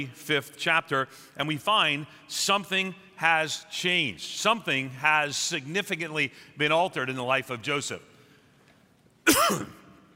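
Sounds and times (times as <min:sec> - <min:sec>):
speech: 0:00.0 - 0:08.1, 0:09.3 - 0:09.8
cough: 0:09.2 - 0:10.0.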